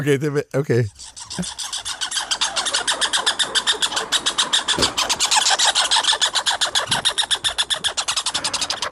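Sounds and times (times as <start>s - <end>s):
speech: 0.0s - 1.9s
two American red squirrels fighting and chattering: 0.5s - 8.9s.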